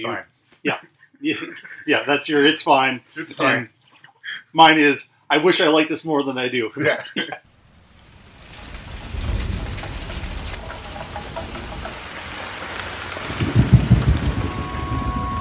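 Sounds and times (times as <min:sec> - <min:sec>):
speech: 0:00.0 - 0:07.5
steady rain hissing: 0:07.4 - 0:15.3
deep rolls of thunder rumbling: 0:07.5 - 0:15.3.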